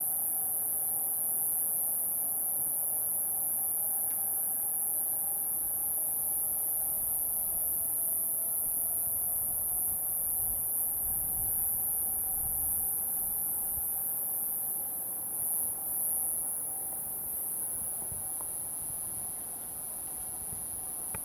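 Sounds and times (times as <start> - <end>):
insect sounds: 0.0 - 21.2.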